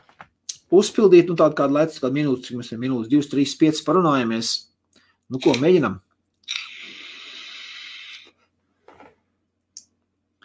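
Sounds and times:
speech: 0.7 - 4.7, 5.3 - 6.0
air drawn through a refillable pod-mod e-cigarette with airflow fully open: 6.5 - 8.4.

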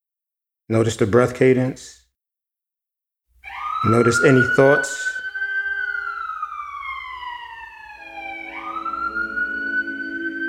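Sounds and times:
speech: 0.7 - 2.0, 3.8 - 5.2
siren wailing: 3.4 - 10.4.

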